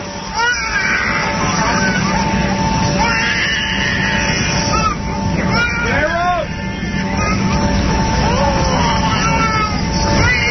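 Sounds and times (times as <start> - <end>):
constant airplane engine drone: 0.0 - 10.4
murmur of other passengers' voices: 0.0 - 10.4
baby crying aboard an airplane: 0.4 - 2.1, 3.0 - 6.5, 9.1 - 10.4.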